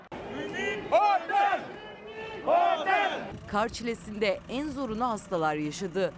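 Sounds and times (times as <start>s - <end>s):
crowd of tourists chanting slogans in unison: 0.0s - 3.3s
loud rhythmic bursts of shouting: 0.4s - 3.3s
speech: 3.5s - 6.1s.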